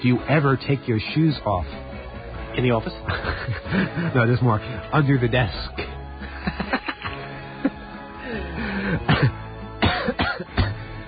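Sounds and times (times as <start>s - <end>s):
speech: 0.0s - 1.8s, 2.6s - 6.8s
laughter: 3.0s - 4.6s, 5.8s - 9.3s
person coughing: 8.9s - 10.9s
throat clearing: 9.1s - 10.8s.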